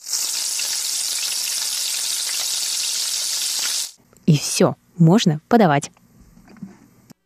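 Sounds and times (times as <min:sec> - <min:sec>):
noodles with sauce and green onion stir-frying in a pan: 0:00.0 - 0:04.0
speech: 0:04.3 - 0:06.0.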